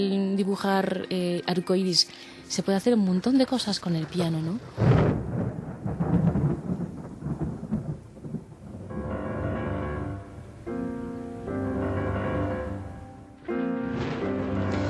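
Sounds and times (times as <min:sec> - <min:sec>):
speech: 0:00.0 - 0:05.2
deep rolling thunder-like rumble: 0:03.7 - 0:11.0, 0:13.7 - 0:14.8
sustained instrumental chords: 0:08.9 - 0:14.8.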